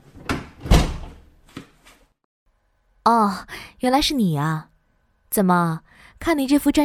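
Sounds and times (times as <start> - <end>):
door swinging shut with a solid thud: 0.2 - 1.2
speech: 3.1 - 4.7, 5.3 - 6.8.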